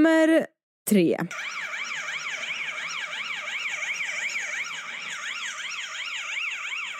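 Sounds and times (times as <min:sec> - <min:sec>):
speech: 0:00.0 - 0:01.7
police car siren wailing: 0:01.3 - 0:06.9.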